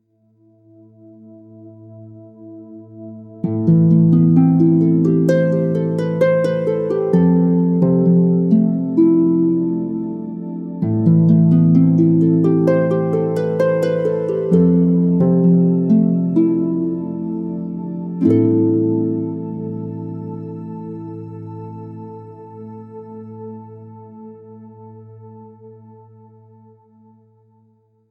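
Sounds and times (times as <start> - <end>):
reflective harp drone: 3.4 - 24.2.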